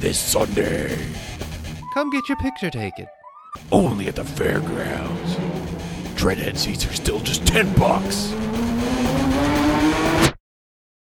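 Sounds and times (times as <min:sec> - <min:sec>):
speech: 0:00.0 - 0:01.4, 0:02.0 - 0:05.6, 0:06.2 - 0:09.5
monster truck engine revving: 0:03.6 - 0:10.4.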